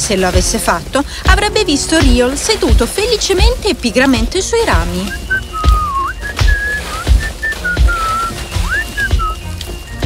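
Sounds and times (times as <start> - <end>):
speech: 0.1 - 5.3
low thuds: 0.4 - 10.0
person whistling a simple tune: 4.9 - 10.0.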